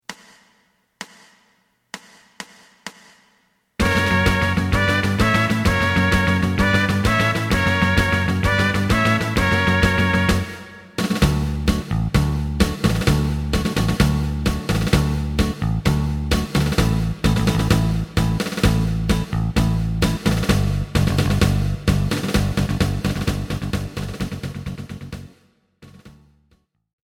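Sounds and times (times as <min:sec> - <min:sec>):
guitar tango karaoke backing track for electric band: 0:03.8 - 0:23.8.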